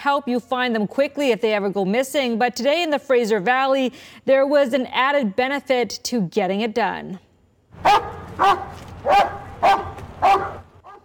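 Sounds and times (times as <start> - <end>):
speech: 0.0 - 10.6
large police dog barking outside a veterinary hospital: 7.8 - 11.0.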